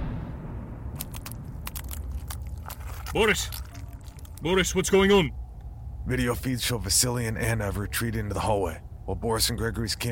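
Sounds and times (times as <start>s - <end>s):
low rumbling background: 0.0s - 10.1s
creature biting down on a grenade: 1.0s - 4.4s
speech: 3.1s - 3.7s, 4.4s - 5.4s, 6.1s - 10.1s.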